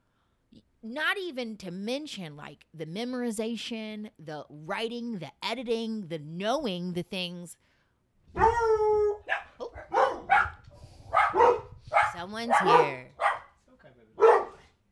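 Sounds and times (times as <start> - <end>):
speech: 0.8 - 7.7, 12.2 - 13.3
dog barking: 8.4 - 13.6, 14.2 - 14.8.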